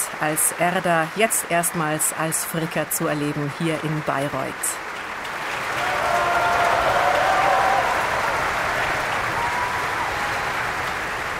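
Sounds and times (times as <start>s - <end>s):
large audience applauding a mezzo-soprano in an opera house in Bayreuth: 0.0s - 11.3s
speech: 0.2s - 4.9s
faint cheering from an opera audience: 5.5s - 11.3s.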